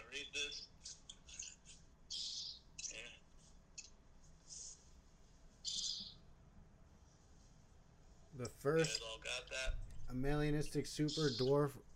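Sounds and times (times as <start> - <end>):
low steady room hum: 0.0 - 11.9
pet birds chirping and squawking in a room: 0.4 - 3.1, 5.6 - 6.3, 11.1 - 11.6
speech: 8.4 - 9.3, 10.1 - 11.9.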